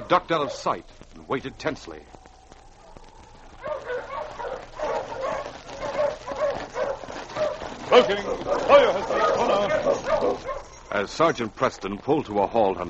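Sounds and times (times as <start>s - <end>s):
team of sled dogs barking and yelping: 0.0s - 1.0s, 2.7s - 11.3s
speech: 0.1s - 2.2s, 7.9s - 12.8s.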